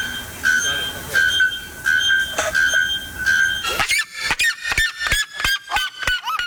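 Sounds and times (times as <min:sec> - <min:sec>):
bare-throated bellbird or kuifsirima metallic clanging notes: 0:00.0 - 0:04.1
noisy background: 0:00.0 - 0:04.3
bare-throated bellbird or kuifsirima whistled calls: 0:00.0 - 0:05.0.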